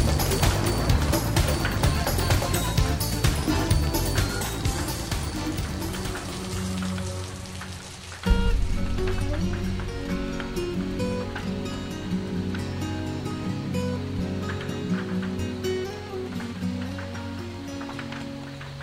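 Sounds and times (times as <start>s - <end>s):
rain pattering against a window: 0.0s - 18.8s
soft sustained musical tones: 0.0s - 18.8s.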